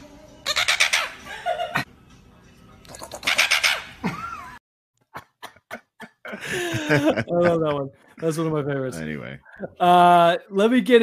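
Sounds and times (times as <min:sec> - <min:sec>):
caged tropical birds squawking and calling: 0:00.4 - 0:01.3, 0:02.9 - 0:04.0
laughter: 0:04.0 - 0:08.1
speech: 0:06.5 - 0:11.0.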